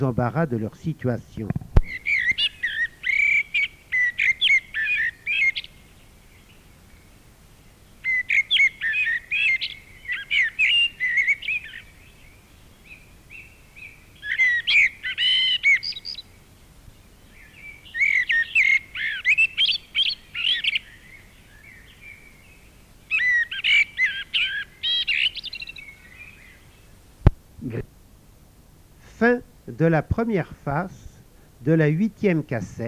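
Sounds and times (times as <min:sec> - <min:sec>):
speech: 0:00.0 - 0:02.5, 0:29.8 - 0:31.0, 0:31.6 - 0:32.8
blackbird singing warbling chirpy phrases: 0:00.0 - 0:07.1, 0:07.9 - 0:16.4, 0:17.0 - 0:26.9.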